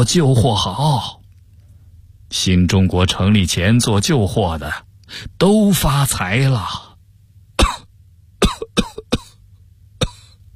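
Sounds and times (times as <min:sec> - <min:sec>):
speech: 0:00.0 - 0:01.2, 0:02.3 - 0:06.8
faint low hum: 0:00.0 - 0:10.5
violent coughing fit of harsh explosive coughs: 0:07.6 - 0:09.4, 0:10.0 - 0:10.4.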